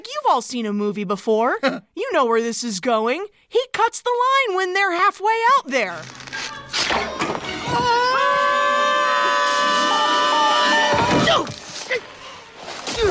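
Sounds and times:
speech: 0.0s - 6.2s
two men screaming in unison: 7.6s - 11.5s.

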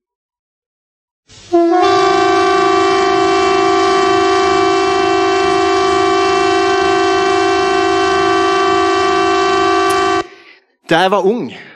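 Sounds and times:
civil defense warning siren steady tone: 1.5s - 10.4s
speech: 10.9s - 11.7s.

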